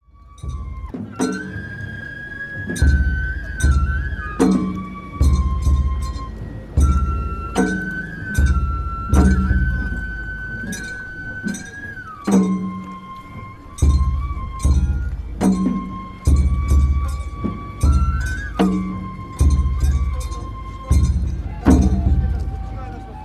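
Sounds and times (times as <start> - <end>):
ohayashi festival music ensemble in Towa town: 0.0 - 23.2.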